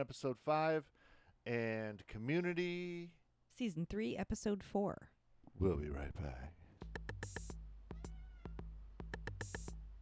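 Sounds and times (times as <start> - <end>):
speech: 0.0 - 6.6
cat meowing in rhythmic bursts: 7.9 - 8.7.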